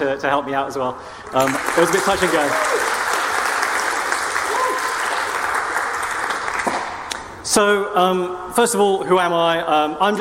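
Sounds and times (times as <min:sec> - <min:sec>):
speech: 0:00.0 - 0:02.9, 0:07.5 - 0:10.1
crowd applauding: 0:01.2 - 0:07.2.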